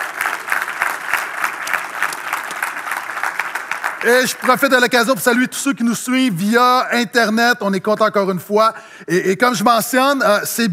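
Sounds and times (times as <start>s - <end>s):
church audience applauding: 0.0s - 5.1s
speech: 4.0s - 10.7s.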